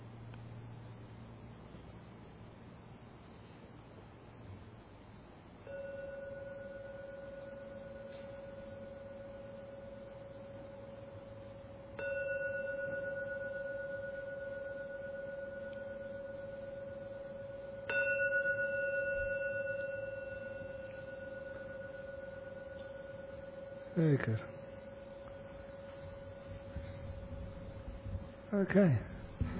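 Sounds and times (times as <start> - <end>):
gong struck: 5.6 - 28.5
speech: 24.0 - 24.5, 28.6 - 29.1.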